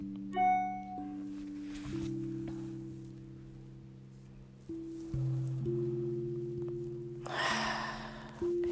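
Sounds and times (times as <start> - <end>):
low calm musical drone: 0.0 - 8.7
slow deep breathing in and out during a guided breathing exercise: 7.2 - 8.7.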